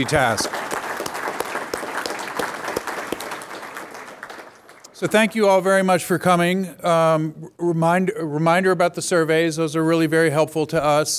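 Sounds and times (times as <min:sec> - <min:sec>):
speech: 0:00.0 - 0:00.7, 0:05.0 - 0:11.1
crowd at a panel event applauding: 0:00.0 - 0:05.2.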